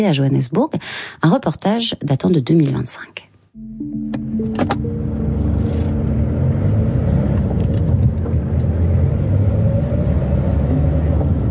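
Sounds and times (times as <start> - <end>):
speech: 0.0 - 4.0
engine rumble from inside a moving car: 3.8 - 11.4.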